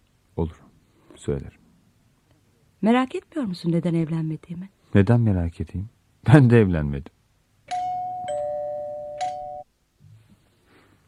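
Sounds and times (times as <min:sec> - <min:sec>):
speech: 0:00.4 - 0:01.6, 0:02.8 - 0:07.2
doorbell chiming with bright struck tones: 0:07.7 - 0:09.7.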